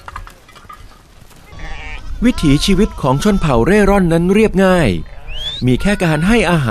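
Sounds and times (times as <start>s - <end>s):
flock of sheep bleating returning home from grazing: 1.4s - 4.4s, 5.0s - 6.7s
speech: 2.2s - 6.7s.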